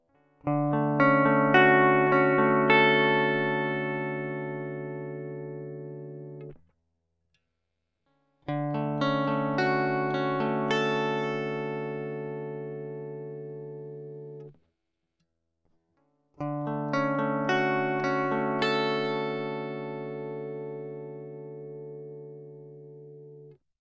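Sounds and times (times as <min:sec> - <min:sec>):
arpeggio: 0:00.5 - 0:06.5, 0:08.6 - 0:13.3, 0:16.5 - 0:21.6.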